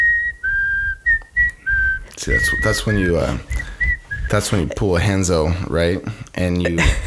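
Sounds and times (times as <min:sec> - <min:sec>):
person whistling an eerie tune: 0:00.0 - 0:04.6
speech: 0:02.2 - 0:03.7, 0:04.3 - 0:07.0.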